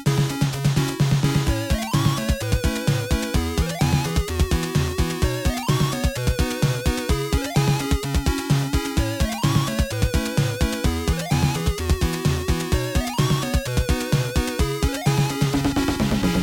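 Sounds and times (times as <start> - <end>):
beat: 0.1 - 16.4.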